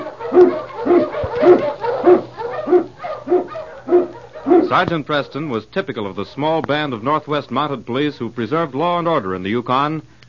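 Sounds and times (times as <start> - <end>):
huskies barking: 0.0 - 6.6
speech: 4.7 - 10.2.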